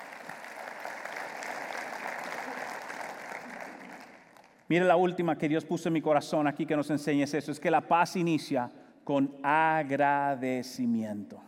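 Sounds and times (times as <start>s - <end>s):
crowd applauding in praise of God: 0.0s - 4.7s
speech: 4.7s - 11.4s.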